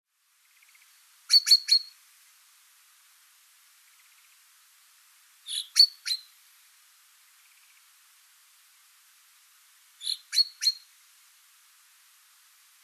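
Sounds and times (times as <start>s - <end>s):
Common chaffinch Fringilla coelebs calling in sharp notes: 1.3s - 2.0s, 5.5s - 6.3s, 10.0s - 10.9s.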